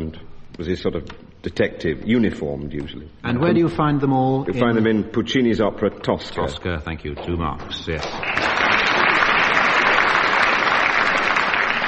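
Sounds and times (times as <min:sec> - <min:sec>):
speech: 0:00.1 - 0:08.5
audience applause: 0:08.1 - 0:11.8.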